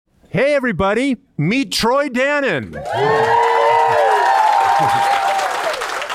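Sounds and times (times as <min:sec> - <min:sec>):
speech: 0:00.3 - 0:04.0, 0:04.8 - 0:05.2
crowd clapping: 0:02.7 - 0:06.1.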